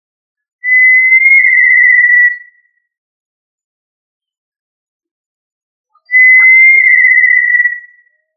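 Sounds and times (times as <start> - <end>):
tinamou whistling long pure notes: 0.6 - 2.6, 6.0 - 8.1.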